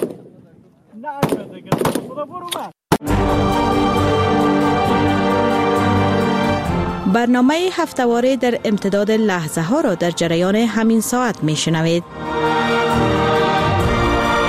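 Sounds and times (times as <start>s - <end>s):
gunshots at a shooting practice: 0.0s - 0.4s, 1.2s - 2.2s
speech: 1.0s - 4.2s, 7.1s - 12.5s
music: 3.0s - 14.4s.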